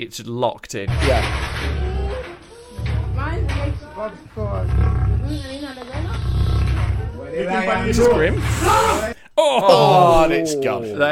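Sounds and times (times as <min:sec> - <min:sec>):
speech: 0:00.0 - 0:01.8, 0:03.3 - 0:06.0, 0:07.4 - 0:11.1
lion roaring in a played video: 0:00.9 - 0:09.0.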